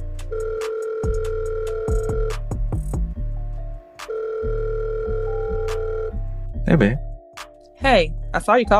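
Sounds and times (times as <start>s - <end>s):
outgoing phone call ringing tone: 0.3s - 2.4s, 4.0s - 6.3s
speech: 6.7s - 7.1s, 7.8s - 8.7s.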